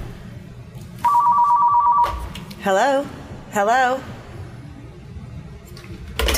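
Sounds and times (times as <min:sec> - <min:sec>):
telephone ringing for an incoming call: 0:01.0 - 0:02.2
speech: 0:02.6 - 0:04.1.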